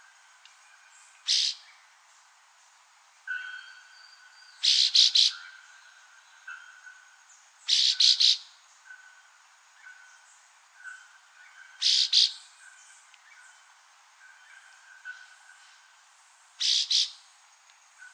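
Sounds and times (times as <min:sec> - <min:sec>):
Chestnut-bellied Euphonia Euphonia pectoralis giving harsh buzzy calls: 0:01.2 - 0:01.6, 0:04.6 - 0:05.7, 0:07.7 - 0:09.1, 0:10.8 - 0:12.4, 0:16.6 - 0:17.2.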